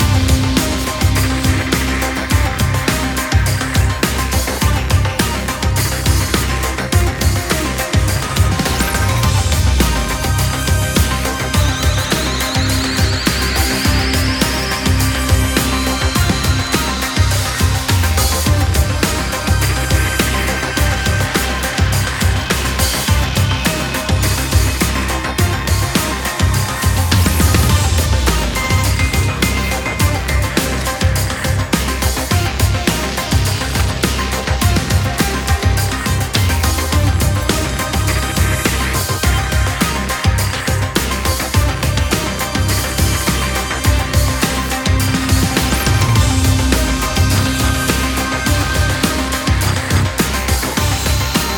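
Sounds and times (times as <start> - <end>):
loading loop: 0.0 - 51.5.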